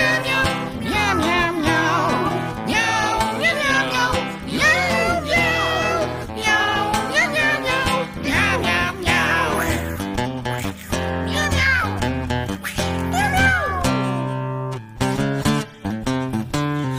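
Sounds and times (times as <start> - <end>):
voice imitating cat meows in a song: 0.0 - 10.0, 13.1 - 14.2
busy steady music: 0.0 - 15.9.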